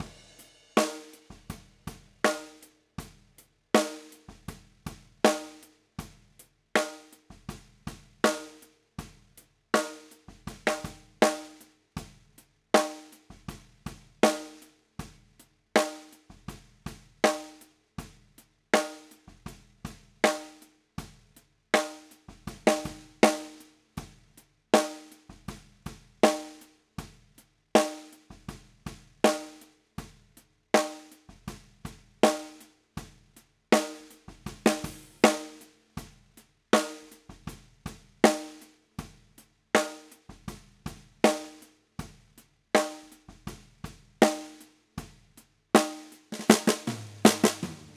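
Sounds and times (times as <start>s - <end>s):
snare drum bottom: 0.0s - 3.2s, 3.8s - 5.7s, 6.8s - 8.7s, 9.8s - 11.7s, 12.8s - 14.7s, 18.8s - 20.7s, 21.8s - 24.2s, 24.8s - 27.2s, 27.8s - 30.2s, 30.8s - 33.2s, 33.8s - 36.2s, 36.8s - 38.8s, 39.8s - 42.2s, 42.8s - 45.2s, 45.8s - 47.9s.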